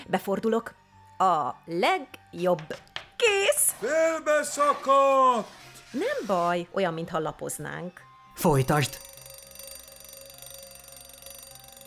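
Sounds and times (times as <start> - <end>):
speech: 0.1 - 9.1
alarm clock buzzing: 8.4 - 11.8.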